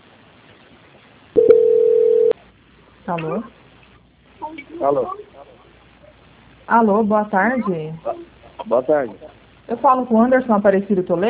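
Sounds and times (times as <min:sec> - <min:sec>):
telephone call transfer tone on the line: 0:01.4 - 0:02.4
speech: 0:03.1 - 0:03.6, 0:04.5 - 0:05.6, 0:06.7 - 0:11.2.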